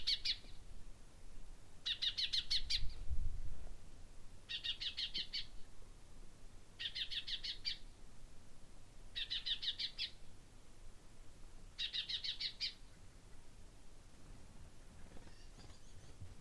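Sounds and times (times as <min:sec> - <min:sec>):
common chaffinch calls: 0:00.0 - 0:00.6, 0:01.8 - 0:03.0, 0:04.5 - 0:05.6, 0:06.8 - 0:07.9, 0:09.2 - 0:10.2, 0:11.8 - 0:12.8, 0:15.2 - 0:16.3
background hiss: 0:00.0 - 0:16.3.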